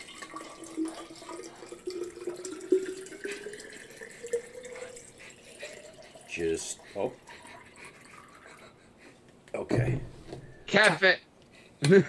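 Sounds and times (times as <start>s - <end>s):
water running from a tap into a container: 0.0s - 8.4s
speech: 6.4s - 7.2s, 9.6s - 11.2s, 11.8s - 12.0s.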